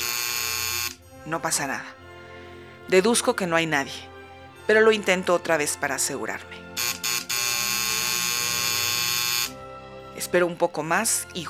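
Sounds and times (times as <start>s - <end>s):
apartment doorbell buzzer ringing: 0.0s - 1.0s, 6.8s - 9.6s
speech: 1.2s - 2.0s, 2.9s - 4.1s, 4.7s - 6.6s, 10.2s - 11.4s.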